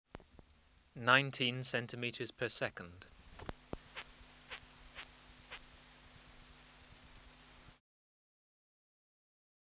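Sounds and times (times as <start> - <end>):
faint low hum: 0.2 - 7.8
Thyreonotus bidens bush-cricket calling: 3.1 - 7.8.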